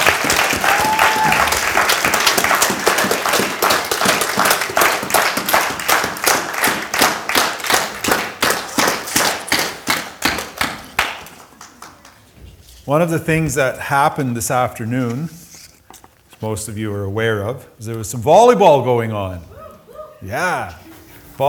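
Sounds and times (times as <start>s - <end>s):
audience at a weekend event applauding the organizers: 0.0s - 12.3s
speech: 12.9s - 15.4s, 16.4s - 19.5s, 20.2s - 20.8s.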